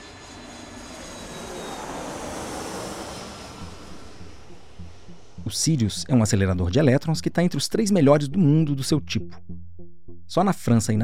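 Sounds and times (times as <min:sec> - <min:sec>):
airplane in flight roaring: 0:00.0 - 0:08.2
speech: 0:05.4 - 0:09.6, 0:10.3 - 0:11.0.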